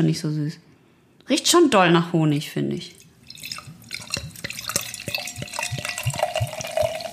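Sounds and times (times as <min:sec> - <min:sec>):
speech: 0:00.0 - 0:00.7, 0:01.3 - 0:03.0
beer foaming and fizzing in a glass: 0:03.0 - 0:07.1.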